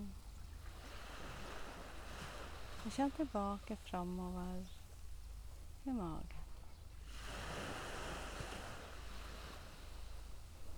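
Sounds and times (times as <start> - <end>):
ocean waves washing onto a beach: 0.0 - 5.9, 7.0 - 10.7
speech: 2.8 - 4.8, 5.8 - 6.4.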